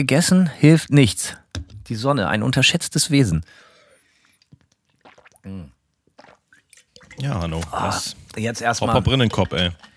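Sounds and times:
speech: 0.0s - 3.7s, 5.4s - 5.8s, 7.2s - 9.9s
person sipping a drink: 4.1s - 8.4s
loud swallow: 5.0s - 6.4s.

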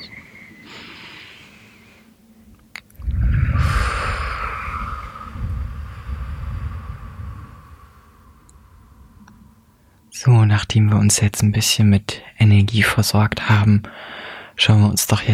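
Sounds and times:
deep breathing in and out: 0.6s - 2.2s, 3.0s - 10.1s, 13.9s - 14.6s
speech: 10.2s - 15.3s.

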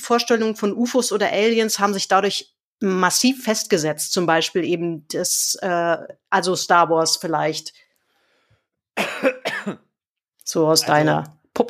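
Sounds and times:
speech: 0.1s - 7.8s, 10.5s - 11.6s
harsh raspy coughs: 9.0s - 10.0s.

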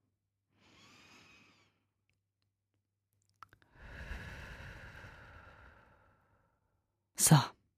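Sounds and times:
slow breathing in and out: 0.5s - 2.0s, 3.6s - 6.7s
speech: 7.3s - 7.5s.

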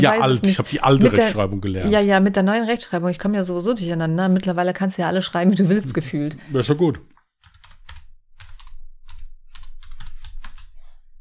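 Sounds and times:
speech: 0.0s - 7.1s
typing on a computer keyboard to search online: 7.4s - 10.8s.

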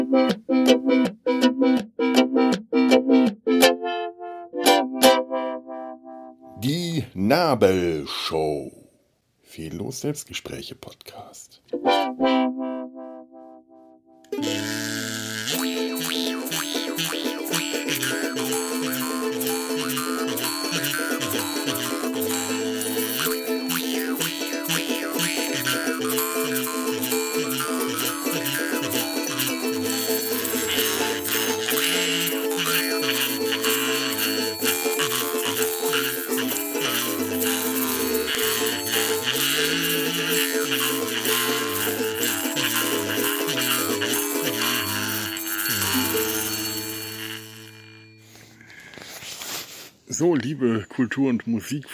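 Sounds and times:
classical symphonic melody on ukulele kazoo and jaw harp: 0.0s - 5.6s, 11.7s - 12.8s, 14.2s - 49.6s
speech: 0.1s - 1.2s, 7.5s - 8.8s, 9.5s - 12.5s, 50.2s - 51.9s.

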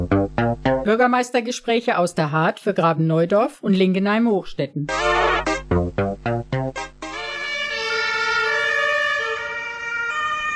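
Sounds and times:
speech: 0.9s - 6.5s
emergency vehicle siren: 7.1s - 10.5s.

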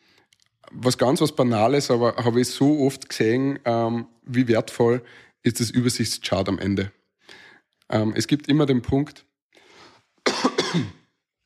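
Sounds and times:
speech: 0.7s - 9.3s, 10.7s - 11.0s
soft breath in: 5.0s - 5.4s, 7.2s - 7.7s, 9.6s - 10.2s
rough coughs: 10.3s - 11.0s.

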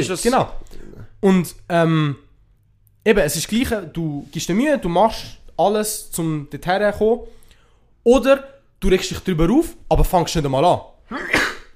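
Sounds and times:
speech: 0.0s - 2.2s, 3.0s - 7.4s, 8.0s - 11.5s
person sneezing: 11.1s - 11.7s.

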